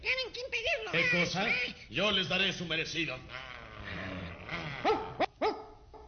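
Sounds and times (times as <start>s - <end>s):
steady low noise: 0.0s - 6.0s
speech: 0.9s - 3.4s
dog barking: 4.8s - 6.0s.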